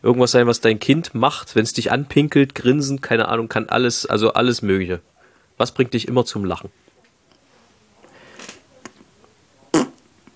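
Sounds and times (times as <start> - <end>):
speech: 0.0 - 6.8
fart: 9.7 - 10.1.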